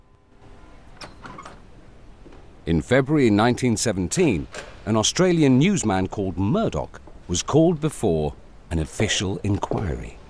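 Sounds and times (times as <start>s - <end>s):
low hiss: 0.0s - 10.2s
room door closing: 0.4s - 2.5s, 4.4s - 4.9s
speech: 2.7s - 10.2s.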